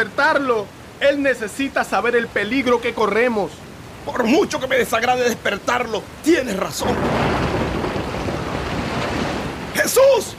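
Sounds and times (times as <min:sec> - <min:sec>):
speech: 0:00.0 - 0:07.6, 0:09.8 - 0:10.3
waves crashing in a storm at sea: 0:00.0 - 0:10.3
steady roaring wind of a storm at sea: 0:03.6 - 0:10.3.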